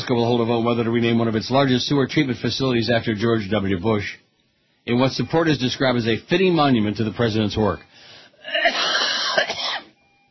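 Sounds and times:
speech: 0.1 - 4.2, 4.8 - 7.9
harsh wet throaty cough: 8.4 - 9.9.

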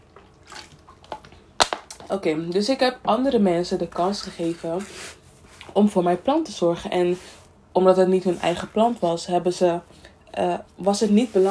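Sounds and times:
quiet sip of water: 0.0 - 1.6
speech: 2.1 - 5.2, 5.8 - 11.4.

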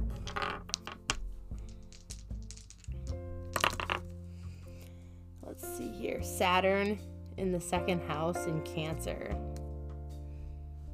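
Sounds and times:
dice tumbling and bouncing on a hard surface: 0.0 - 4.2
speech: 6.1 - 9.5.

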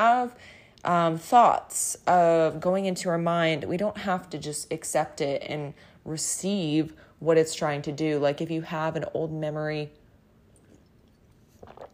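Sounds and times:
speech: 0.0 - 10.0
slurping sip of hot tea: 10.6 - 11.9.

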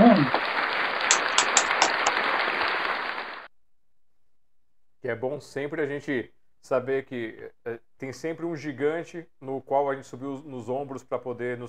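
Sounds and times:
group applauding in memory of someone: 0.0 - 3.5
speech: 5.1 - 11.6.

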